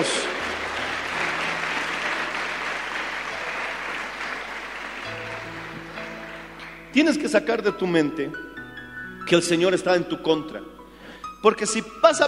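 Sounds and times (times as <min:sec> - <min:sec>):
congregation applauding: 0:00.0 - 0:07.4
low sustained organ-like tones: 0:00.0 - 0:07.4
speech: 0:07.0 - 0:08.6, 0:09.3 - 0:10.8, 0:11.4 - 0:12.2.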